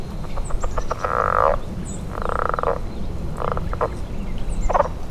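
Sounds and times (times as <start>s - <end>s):
Southern Leopard Frog calling: 0.1s - 5.0s.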